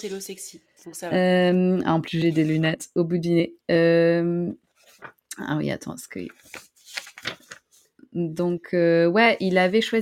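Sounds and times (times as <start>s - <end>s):
speech: 0.0s - 7.4s, 8.1s - 10.0s
paper note pages rustling: 2.0s - 2.7s, 4.7s - 5.3s, 6.1s - 8.0s, 9.2s - 10.0s.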